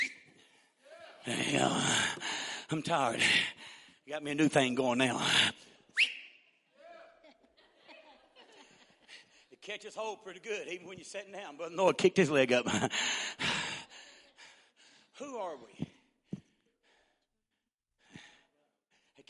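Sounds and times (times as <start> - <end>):
person whistling a cue: 0.0 - 0.3, 6.0 - 6.5
speech: 1.2 - 6.1, 9.7 - 13.4, 15.2 - 15.9
laughter: 7.2 - 9.6, 12.6 - 13.0.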